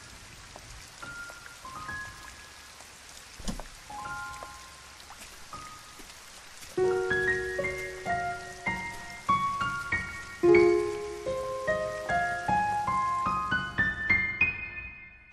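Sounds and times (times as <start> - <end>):
light rain pattering: 0.0 - 14.6.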